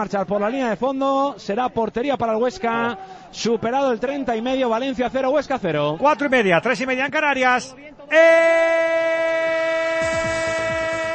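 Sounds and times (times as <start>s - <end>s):
speech: 0.0s - 9.2s
train horn tone in a sports radio jingle: 9.8s - 11.1s.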